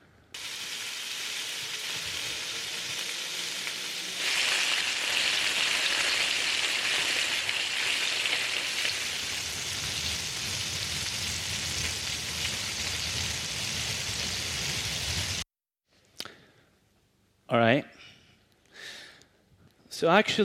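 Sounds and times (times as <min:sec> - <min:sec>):
bacon frying in a pan: 0:00.4 - 0:15.4
speech: 0:20.0 - 0:20.4.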